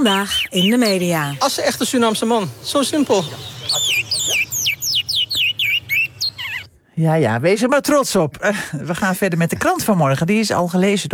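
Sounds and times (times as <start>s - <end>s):
speech: 0.0s - 3.6s, 7.0s - 11.1s
songbird chirping: 0.0s - 6.9s.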